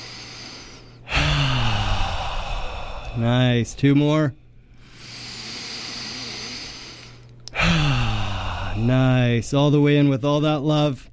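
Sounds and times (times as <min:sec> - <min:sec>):
deep inhale through the nose during a guided breathing exercise: 0:00.0 - 0:03.7, 0:04.7 - 0:09.2
speech: 0:03.2 - 0:04.4, 0:08.8 - 0:11.1.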